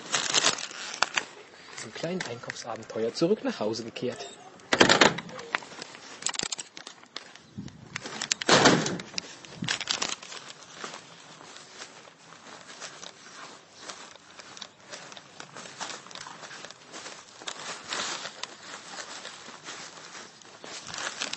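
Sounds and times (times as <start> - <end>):
rustling and shuffling: 0.0 - 21.3
speech: 1.8 - 4.9
doors opening and closing: 4.0 - 5.7.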